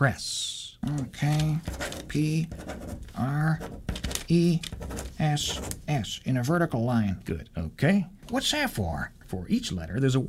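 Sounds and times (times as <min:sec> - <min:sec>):
speech: 0:00.0 - 0:10.2
pencil writing letters on paper: 0:01.3 - 0:05.8.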